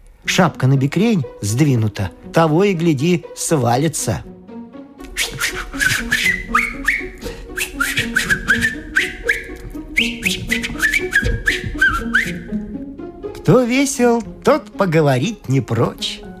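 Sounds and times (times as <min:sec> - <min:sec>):
speech: 0:00.3 - 0:04.3, 0:13.5 - 0:16.2
man whistling a lively tune while walking: 0:05.1 - 0:12.6.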